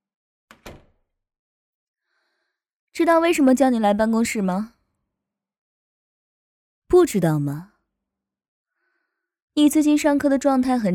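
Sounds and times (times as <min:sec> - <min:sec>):
door shutting: 0:00.5 - 0:01.0
speech: 0:03.0 - 0:04.8, 0:06.9 - 0:07.7, 0:09.6 - 0:10.9.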